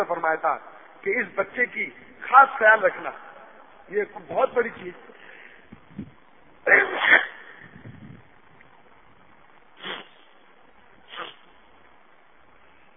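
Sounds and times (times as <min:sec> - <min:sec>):
speech: 0:00.0 - 0:03.3, 0:03.9 - 0:05.2, 0:06.0 - 0:07.3
person sneezing: 0:06.6 - 0:07.8, 0:09.8 - 0:10.4, 0:11.1 - 0:11.6.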